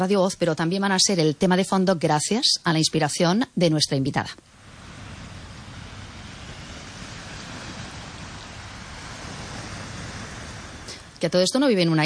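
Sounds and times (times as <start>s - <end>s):
speech: 0.0s - 4.6s, 11.2s - 12.0s
sea surf roar: 4.4s - 12.0s.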